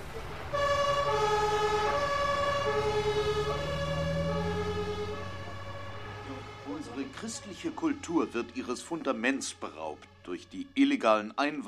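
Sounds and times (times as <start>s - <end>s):
low vehicle rumble: 0.0s - 10.6s
ambulance siren in a two-tone wail: 0.0s - 11.1s
speech: 7.2s - 11.6s.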